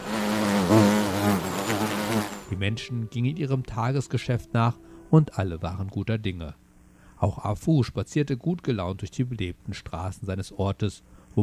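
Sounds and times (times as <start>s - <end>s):
bees buzzing: 0.0s - 2.8s
speech: 2.6s - 6.6s, 7.2s - 11.4s.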